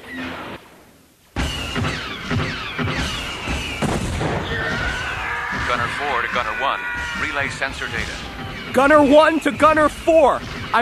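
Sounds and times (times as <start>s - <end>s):
ion cannons and turbo lasers firing from defense towers: 1.4s - 6.0s
speech: 6.0s - 10.8s.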